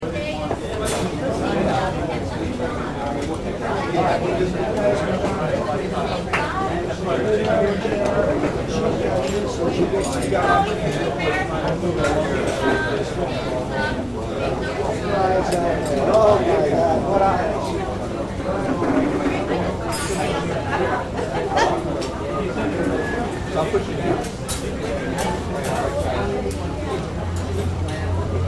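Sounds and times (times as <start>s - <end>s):
cafe crowd chatter: 0.0s - 28.4s.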